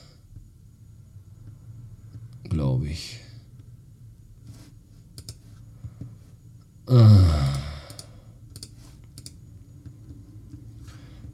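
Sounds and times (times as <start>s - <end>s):
speech: 2.8s - 3.2s, 6.9s - 7.2s
soft computer mouse clicks: 5.1s - 5.4s, 7.9s - 10.7s.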